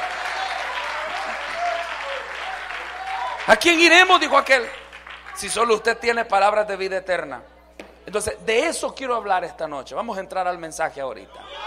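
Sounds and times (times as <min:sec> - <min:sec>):
audience applauding: 0:00.0 - 0:05.7
speech: 0:03.5 - 0:04.8, 0:05.4 - 0:07.5, 0:08.1 - 0:11.6.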